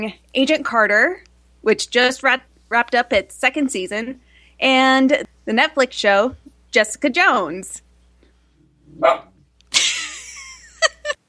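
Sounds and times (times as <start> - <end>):
speech: 0.0 - 7.8, 9.0 - 9.3
dog barking: 9.0 - 9.4
laughter: 9.7 - 11.2.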